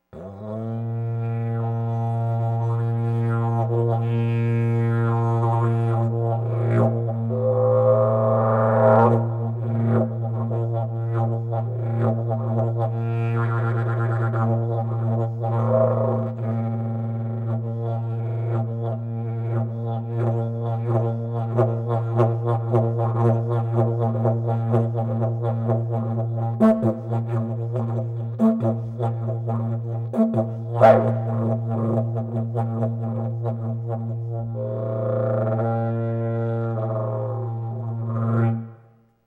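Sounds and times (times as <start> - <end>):
didgeridoo in B flat: 0.2 - 38.8.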